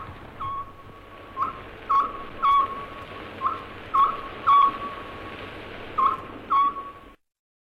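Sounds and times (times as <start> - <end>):
crackly hiss of an old worn recording: 0.0 - 7.2
Japanese scops owl three-note call: 0.4 - 0.8, 1.4 - 5.2, 6.0 - 7.2.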